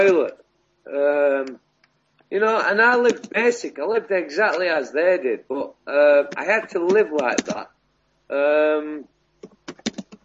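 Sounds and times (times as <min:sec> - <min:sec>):
speech: 0:00.0 - 0:01.6, 0:02.3 - 0:10.0
typing on a computer keyboard: 0:03.0 - 0:03.4, 0:06.3 - 0:07.6, 0:09.4 - 0:10.2.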